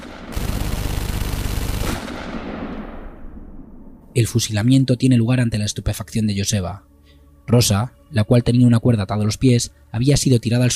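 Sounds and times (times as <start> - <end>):
sustained burst of rapid gunfire: 0.0 - 3.0
speech: 4.2 - 6.9, 7.5 - 10.7.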